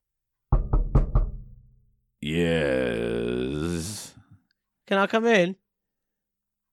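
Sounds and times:
firm knocks on a door: 0.5 - 1.8
sustained voice-like tone: 2.2 - 4.2
speech: 4.9 - 5.6.

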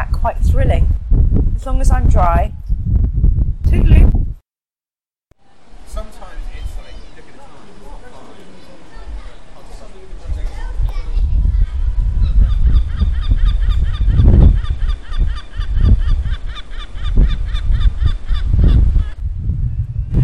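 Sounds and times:
low rumble: 0.0 - 4.4, 10.3 - 16.3, 17.2 - 20.2
speech: 1.6 - 2.5
pub babble of many overlapping voices and lively chatter: 6.6 - 13.1
gull calling noisily by a canal path: 11.7 - 19.2.

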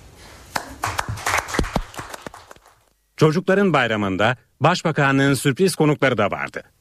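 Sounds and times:
small group applause: 0.5 - 2.9
speech: 3.2 - 6.7.

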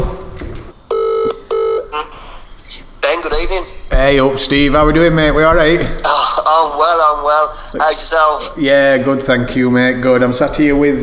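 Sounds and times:
electronic ringback tones of an outgoing telephone call: 0.9 - 2.1
speech: 4.1 - 11.0.

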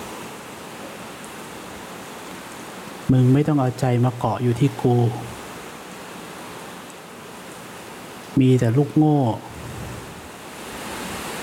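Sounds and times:
steady rain: 0.0 - 11.4
speech: 3.1 - 5.3, 8.4 - 9.5.

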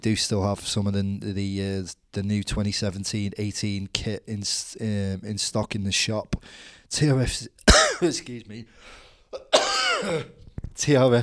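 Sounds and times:
speech: 0.0 - 11.2
man clearing throat: 7.7 - 8.2, 9.3 - 10.5
man coughing into the microphone: 7.7 - 8.3, 9.3 - 10.4.

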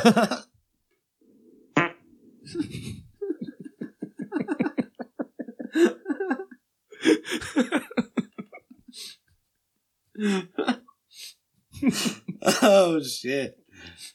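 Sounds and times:
speech: 0.0 - 0.5, 10.2 - 10.5, 12.7 - 14.1
fart sound effects: 1.7 - 2.2
laughter: 2.4 - 8.7, 11.8 - 13.0.

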